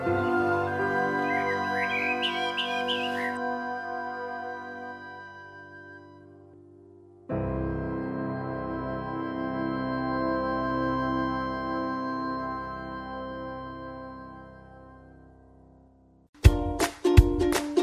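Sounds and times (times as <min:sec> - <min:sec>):
sustained music: 0:00.0 - 0:17.8
bird chirping and tweeting: 0:01.0 - 0:03.4.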